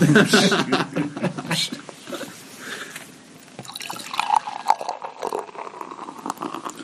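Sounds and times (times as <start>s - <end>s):
laughter: 0.0s - 2.3s
beer poured into a glass, gurgling and splashing: 3.4s - 6.8s
fizzing beer bubbles: 3.4s - 6.8s.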